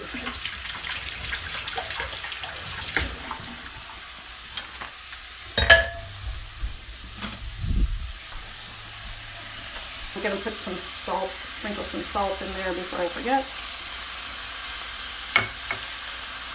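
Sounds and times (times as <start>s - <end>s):
meat sizzling in a hot skillet: 0.0s - 7.4s, 8.0s - 16.5s
sharp clank of a utensil against the pan: 5.6s - 6.2s, 15.3s - 15.9s
speech: 10.2s - 13.6s.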